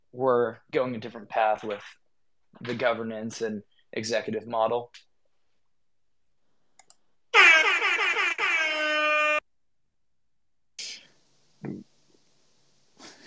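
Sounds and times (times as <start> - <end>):
speech: 0.1 - 5.1, 11.6 - 11.8
brassy air horn blast: 7.4 - 9.4.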